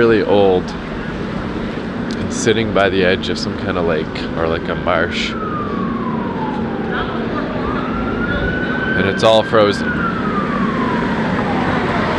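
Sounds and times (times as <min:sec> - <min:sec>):
speech: 0:00.0 - 0:00.9, 0:02.3 - 0:05.4, 0:09.1 - 0:10.3
city traffic noise on Queen Street: 0:00.0 - 0:12.1
emergency vehicle sirens wailing on city street: 0:00.0 - 0:12.1
emergency siren rapid yelping: 0:04.5 - 0:12.1.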